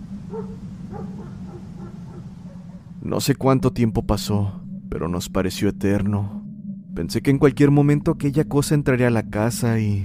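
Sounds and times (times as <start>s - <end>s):
dogs howling: 0.0s - 3.0s
steady low rumble: 0.0s - 10.0s
speech: 0.3s - 1.4s, 3.1s - 6.4s, 7.0s - 10.0s.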